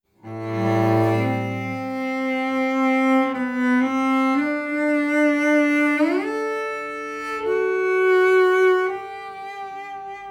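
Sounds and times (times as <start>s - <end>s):
cello: 0.1s - 10.2s.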